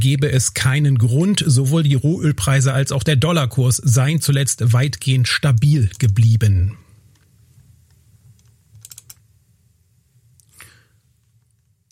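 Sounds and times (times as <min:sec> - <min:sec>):
speech: 0:00.0 - 0:06.8
low steady hum: 0:00.0 - 0:11.9
computer clicks: 0:08.4 - 0:09.2.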